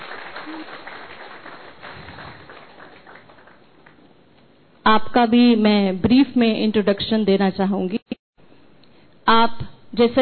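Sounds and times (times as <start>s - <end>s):
crowd applauding a panel discussion guest: 0.0s - 4.0s
speech: 0.5s - 1.0s, 4.9s - 8.0s, 10.0s - 10.1s.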